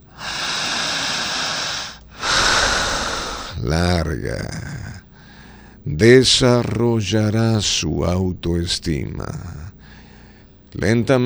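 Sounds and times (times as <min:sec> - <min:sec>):
deep inhalation during breathing exercise: 0:00.0 - 0:03.7, 0:04.4 - 0:05.8, 0:09.7 - 0:10.5
speech: 0:03.6 - 0:04.8, 0:05.8 - 0:09.8, 0:10.7 - 0:11.2.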